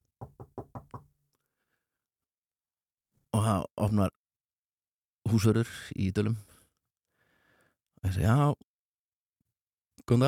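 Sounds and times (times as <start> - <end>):
knocking on a house door: 0.2 - 1.1
speech: 3.4 - 4.2, 5.3 - 6.5, 8.0 - 8.7, 10.1 - 10.2.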